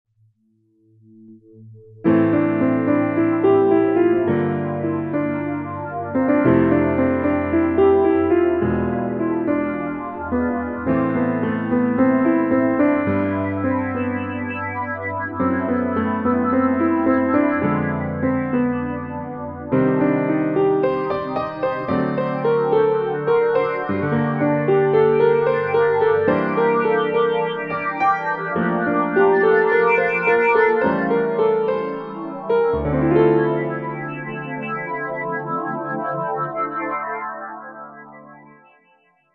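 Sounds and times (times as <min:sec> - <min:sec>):
new age piano music: 0:02.0 - 0:38.2.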